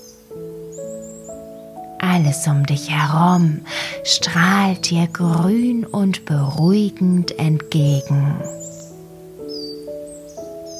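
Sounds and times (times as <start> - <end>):
leaves rustling in a forest: 0.0 - 4.3, 8.0 - 10.7
faint bird chirps: 0.0 - 10.7
speech: 2.2 - 8.6.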